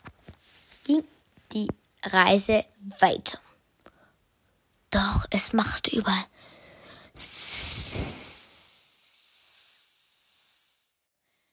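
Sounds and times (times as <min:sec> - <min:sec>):
speech: 0:00.9 - 0:03.4, 0:05.3 - 0:06.3, 0:07.2 - 0:07.4
snake hissing: 0:07.2 - 0:11.1.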